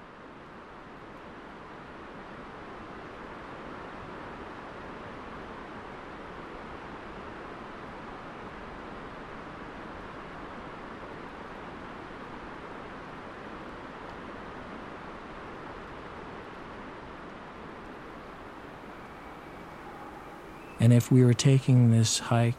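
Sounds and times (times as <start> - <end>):
distant rainforest river rushing, echoing off the far side of a valley: 1.6 - 22.5
speech: 20.8 - 22.5.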